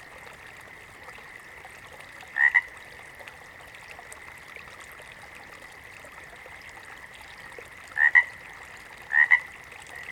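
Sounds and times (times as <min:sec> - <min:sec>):
water frog giving double croaks: 0:02.4 - 0:02.7, 0:08.0 - 0:08.4, 0:09.1 - 0:10.0.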